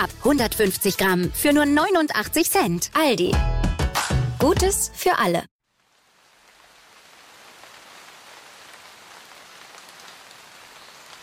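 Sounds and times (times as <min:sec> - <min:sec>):
speech: 0:00.0 - 0:03.6, 0:04.4 - 0:05.5
steady rain pattering against window glass: 0:05.6 - 0:11.2.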